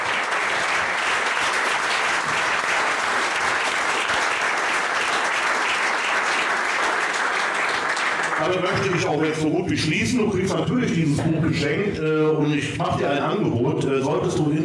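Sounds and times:
applause from a sizable audience: 0:00.0 - 0:09.5
speech: 0:08.4 - 0:14.6.

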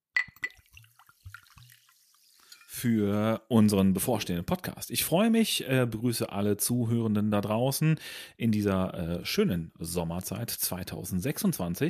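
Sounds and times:
cup clinking: 0:00.1 - 0:01.7, 0:02.4 - 0:02.8
tea pouring into a cup: 0:00.3 - 0:02.8
speech: 0:02.8 - 0:11.8.

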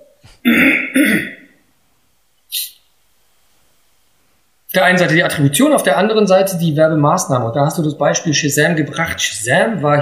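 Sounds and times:
speech: 0:00.4 - 0:01.3, 0:04.8 - 0:10.0
person clearing throat: 0:00.4 - 0:01.6.

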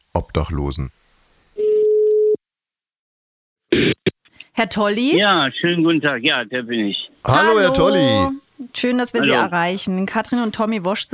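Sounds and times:
speech: 0:00.2 - 0:01.0, 0:04.6 - 0:11.1
ringback tone of an outgoing call to a mobile phone: 0:01.6 - 0:02.4.

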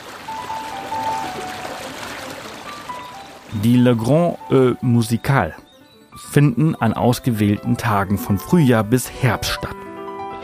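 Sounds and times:
fountain water splashing: 0:00.0 - 0:04.5
speech: 0:03.6 - 0:05.6, 0:06.3 - 0:09.8.

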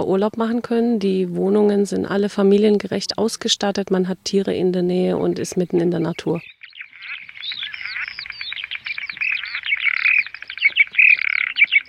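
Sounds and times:
speech: 0:00.0 - 0:06.6
loud dense bird chirping in a dark exhibit corridor: 0:00.0 - 0:11.8
frogs croaking in a dark exhibit corridor: 0:05.1 - 0:11.8.

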